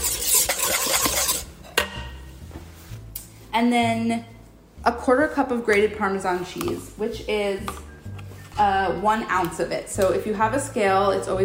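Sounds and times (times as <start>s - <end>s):
whisking a mixture of lemon juice and black pepper: 0.0s - 1.5s
speech: 3.6s - 7.9s, 8.6s - 11.4s.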